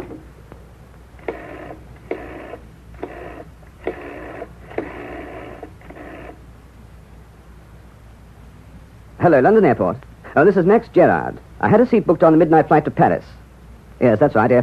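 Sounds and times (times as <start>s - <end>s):
faint hum: 0.0s - 14.6s
electronic telephone dial tones: 1.2s - 6.4s
speech: 9.2s - 13.3s, 14.0s - 14.6s.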